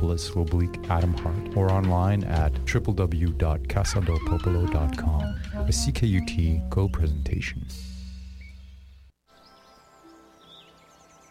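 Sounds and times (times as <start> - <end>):
speech: 0.1 - 7.9
faint birds chirping: 3.9 - 11.2.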